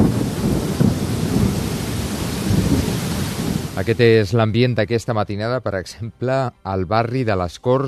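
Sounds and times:
heavy overnight rain in a city: 0.0s - 4.3s
thunder rumbling over a city: 0.0s - 4.4s
speech: 3.8s - 7.8s.

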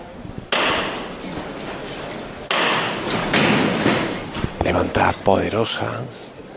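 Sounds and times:
processional float's knocker striking: 0.5s - 4.8s
speech: 4.7s - 6.2s.

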